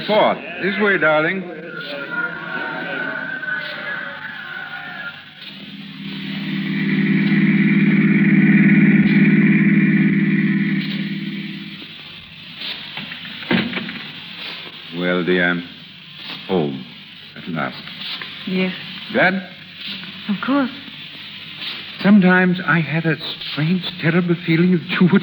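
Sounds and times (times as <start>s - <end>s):
faint voices: 0.0s - 5.8s
speech: 0.1s - 2.1s, 15.1s - 15.7s, 17.6s - 17.9s, 18.5s - 19.6s, 20.3s - 20.8s, 22.0s - 25.2s
car engine humming: 5.3s - 12.3s.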